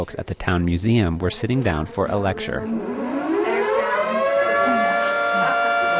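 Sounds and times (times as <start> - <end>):
speech: 0.0 - 3.1
air raid siren winding up and wailing: 1.2 - 5.9.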